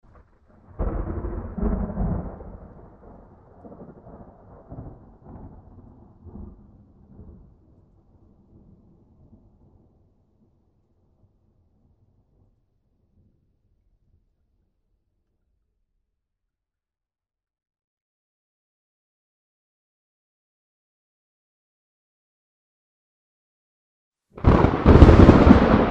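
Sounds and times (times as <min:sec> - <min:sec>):
thunder on an island: 0:00.1 - 0:12.6, 0:24.4 - 0:25.8.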